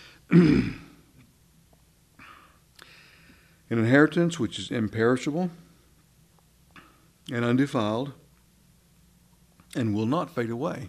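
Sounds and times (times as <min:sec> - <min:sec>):
speech: 0:00.3 - 0:00.8, 0:03.7 - 0:05.6, 0:07.3 - 0:08.2, 0:09.7 - 0:10.8
rough throat clearing: 0:00.3 - 0:01.0.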